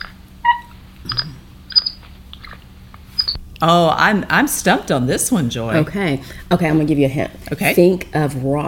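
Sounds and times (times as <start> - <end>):
capuchin monkey whistled squeaks and chirps: 0.0 - 3.4
speech: 3.6 - 8.6.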